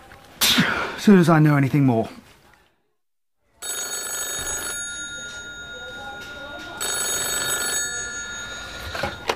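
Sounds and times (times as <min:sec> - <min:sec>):
speech: 0:01.0 - 0:02.2
telephone bell ringing with metallic jangle: 0:03.6 - 0:09.3.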